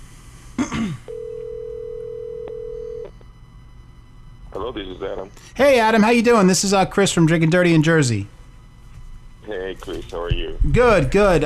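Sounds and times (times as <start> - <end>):
person clearing throat: 0.6 - 1.1
electronic ringback tone of an outgoing phone call through a handset: 1.1 - 3.2
speech: 4.6 - 8.4, 9.8 - 11.4.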